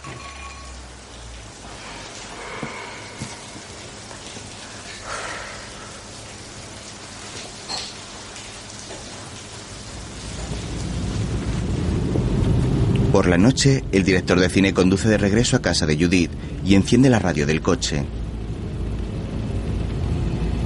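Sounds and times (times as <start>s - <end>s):
rain falling steadily: 0.0s - 20.6s
low rumble: 9.7s - 20.6s
speech: 13.2s - 18.2s.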